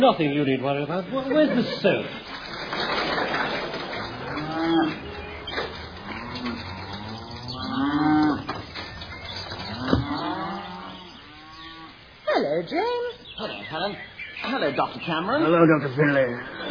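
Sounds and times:
speech: 0.0 - 3.6, 12.6 - 16.6
laughter: 0.0 - 4.3, 15.9 - 16.6
cow mooing: 4.1 - 8.6, 9.6 - 12.0.

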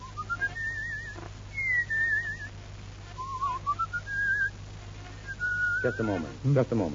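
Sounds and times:
person whistling a slow wavering melody: 0.0 - 2.5, 3.2 - 4.5, 5.3 - 6.2
low steady hum: 0.0 - 6.9
speech: 5.8 - 6.9.

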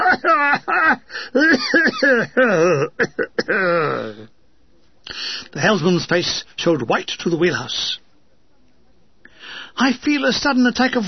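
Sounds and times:
amplified coughing over a tannoy: 0.0 - 4.1
speech: 0.1 - 4.0, 5.5 - 8.0, 9.8 - 11.0.

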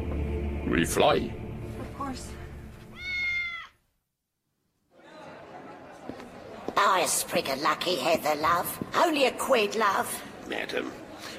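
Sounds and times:
speech: 0.7 - 1.4, 2.1 - 2.4, 7.0 - 11.3
kitten meowing: 2.9 - 3.8.

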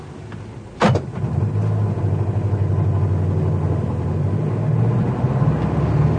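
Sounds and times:
taxi engine rumbling as the taxi sets off: 0.0 - 6.1
car door shutting: 0.8 - 1.2.

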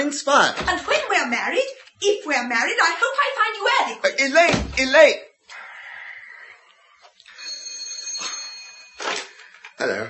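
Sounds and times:
speech: 0.0 - 5.3, 9.8 - 10.0
doorbell ringing: 7.3 - 9.3.

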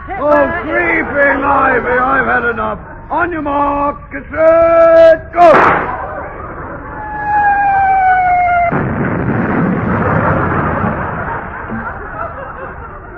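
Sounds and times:
laughter: 0.0 - 3.6, 5.8 - 8.5, 9.9 - 13.1
speech: 0.2 - 6.0
naval gunfire blast: 5.4 - 6.4, 8.6 - 11.7
sustained whistle-like tone: 7.0 - 8.7.

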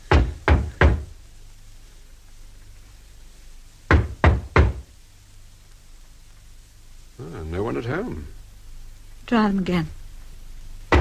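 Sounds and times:
quiet low hum: 0.0 - 10.9
firm knocking on a door: 0.1 - 1.1, 3.9 - 4.9
speech: 7.2 - 8.4, 9.3 - 10.0.

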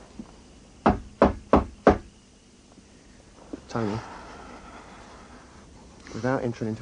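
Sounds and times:
firm knocking on a wooden door: 0.8 - 2.1
speech: 3.7 - 4.2, 6.1 - 6.8.

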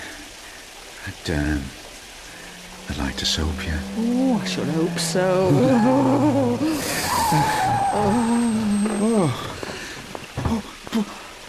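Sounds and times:
speech: 1.0 - 1.8, 2.9 - 9.6
car engine revving hard: 2.2 - 9.0
car tyres screeching and skidding: 2.3 - 10.5.

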